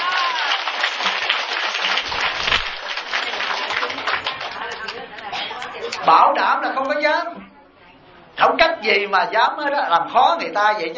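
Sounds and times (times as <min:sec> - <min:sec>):
audience applause: 0:00.0 - 0:05.0
speech: 0:06.1 - 0:07.4, 0:08.4 - 0:10.9.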